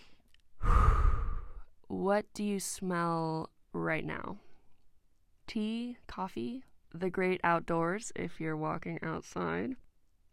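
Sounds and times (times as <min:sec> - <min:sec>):
person taking a deep breath: 0:00.0 - 0:01.7
speech: 0:02.0 - 0:04.5, 0:05.5 - 0:09.8.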